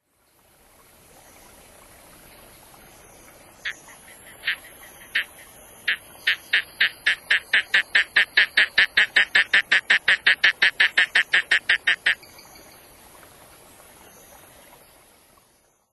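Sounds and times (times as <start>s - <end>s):
Mantidactylus opiparis frog calling: 3.6s - 12.4s.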